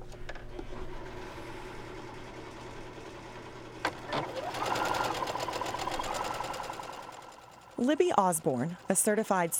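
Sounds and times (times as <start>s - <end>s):
sewing machine stitching a straight stitch on a baby's bib pocket: 3.9s - 9.5s
speech: 7.8s - 9.5s.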